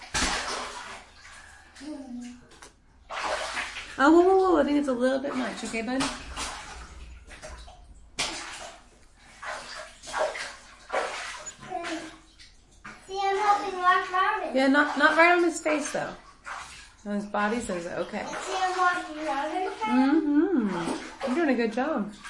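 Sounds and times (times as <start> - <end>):
water splashing and pouring in a bathtub: 0.0 - 22.2
child talking: 1.8 - 2.5, 11.6 - 12.3, 13.0 - 14.6, 18.2 - 20.2
speech: 4.0 - 6.3, 14.6 - 16.2, 17.0 - 22.2.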